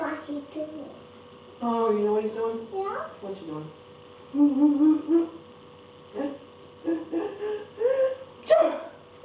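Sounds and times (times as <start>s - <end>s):
speech: 0.2s - 3.8s, 4.3s - 5.4s, 6.1s - 7.7s
sneeze: 8.5s - 9.0s.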